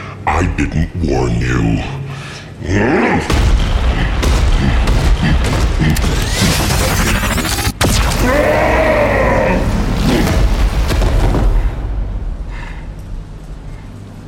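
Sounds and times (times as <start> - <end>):
speech: 0.3 - 2.0, 2.6 - 7.6, 8.2 - 10.3
deep booming rumbles: 3.3 - 7.0, 7.8 - 14.2
sci-fi coma cannon blast: 3.3 - 13.0
warbling mechanical tones: 5.3 - 8.3.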